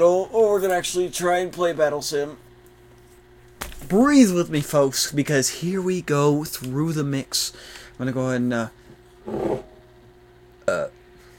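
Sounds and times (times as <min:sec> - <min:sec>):
speech: 0:00.0 - 0:02.5, 0:03.8 - 0:09.7, 0:10.7 - 0:11.0
burps forced up from acid reflux: 0:10.6 - 0:11.0.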